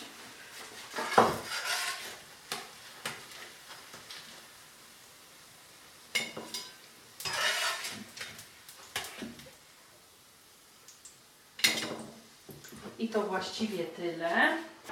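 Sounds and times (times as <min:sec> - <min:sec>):
frying pan sizzling with potato pancakes: 0:00.0 - 0:14.9
speech: 0:13.0 - 0:14.7.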